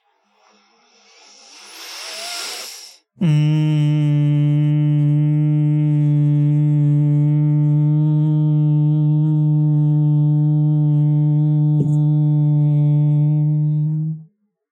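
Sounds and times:
breathy noise: 0:00.3 - 0:04.1
person humming a buzzing tone in imitation of a bee: 0:03.2 - 0:14.3.

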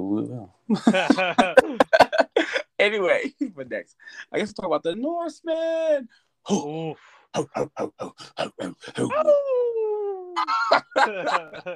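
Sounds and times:
speech: 0:00.1 - 0:09.8, 0:10.4 - 0:11.7
laughter: 0:00.7 - 0:02.6, 0:10.3 - 0:11.7
person imitating dog barks: 0:07.4 - 0:10.7
person imitating dog howl: 0:09.0 - 0:10.6.

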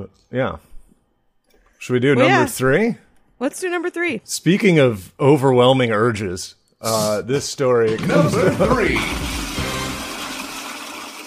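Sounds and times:
speech: 0:00.0 - 0:00.7, 0:01.8 - 0:09.4
powerful office toilet flushing: 0:07.9 - 0:11.2.

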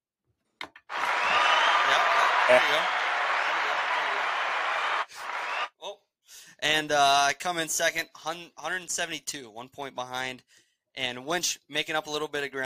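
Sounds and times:
small group clapping: 0:00.7 - 0:05.8
whoops: 0:00.9 - 0:05.7
speech: 0:01.9 - 0:03.0, 0:06.6 - 0:12.6.

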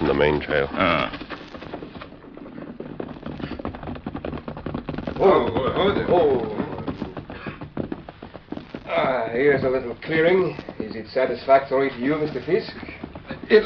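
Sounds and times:
horse hooves galloping: 0:00.0 - 0:13.6
speech: 0:00.1 - 0:01.3, 0:05.2 - 0:06.6, 0:09.3 - 0:12.9, 0:13.5 - 0:13.6.

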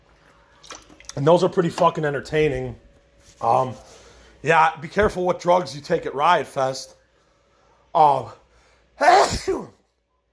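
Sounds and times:
speech: 0:01.2 - 0:02.8, 0:03.4 - 0:07.0, 0:07.9 - 0:08.4, 0:09.0 - 0:09.8
person sneezing: 0:09.0 - 0:09.9.

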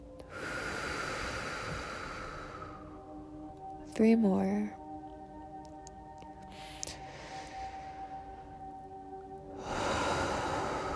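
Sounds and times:
slow breathing during a guided winter meditation: 0:00.2 - 0:03.4, 0:06.2 - 0:10.9
speech: 0:04.0 - 0:04.8.

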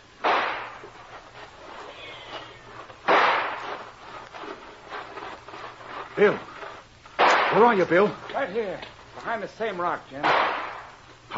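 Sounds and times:
gunshots fired as a signal to charge: 0:00.2 - 0:00.9, 0:03.0 - 0:03.9, 0:07.2 - 0:08.1, 0:10.2 - 0:11.0
speech: 0:06.2 - 0:06.5, 0:07.5 - 0:10.4.

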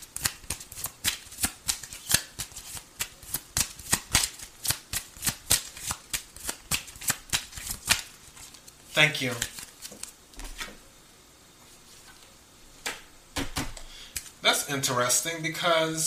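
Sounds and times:
cards being shuffled for a reading: 0:00.2 - 0:10.8
speech: 0:09.0 - 0:09.5, 0:14.7 - 0:16.0.

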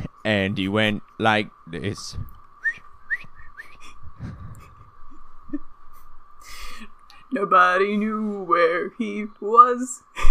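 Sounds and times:
speech: 0:00.2 - 0:02.4, 0:07.3 - 0:10.2
person whistling an eerie melody imitating a ghost: 0:02.6 - 0:03.8.

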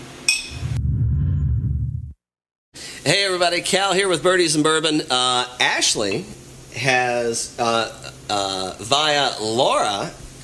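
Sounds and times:
glasses clinking in a toast: 0:00.3 - 0:00.6
low steady rumbling swoosh: 0:00.5 - 0:02.2
speech: 0:03.0 - 0:10.2.

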